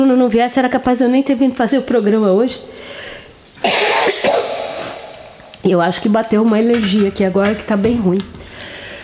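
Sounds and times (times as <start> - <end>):
speech: 0.0 - 3.9, 5.6 - 8.4
harsh raspy coughs: 3.6 - 5.2.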